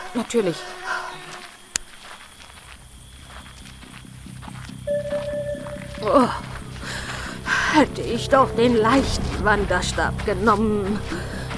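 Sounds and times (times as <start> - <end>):
speech: 0.1 - 1.0, 6.0 - 6.5, 7.8 - 11.5
footsteps of someone running: 0.1 - 11.5
thin rising tone: 4.9 - 6.7.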